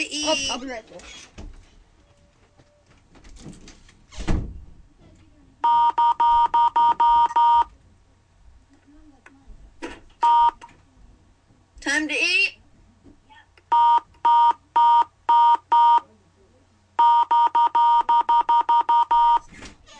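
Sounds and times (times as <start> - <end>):
speech: 0.0 - 1.3, 11.9 - 12.6
telephone keypad beeps from a Skype dial pad: 5.6 - 7.7, 10.2 - 10.6, 13.7 - 16.0, 17.0 - 19.4.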